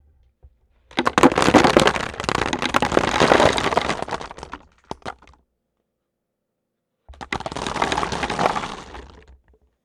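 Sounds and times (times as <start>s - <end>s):
nuts falling: 1.0s - 5.1s, 7.2s - 9.2s.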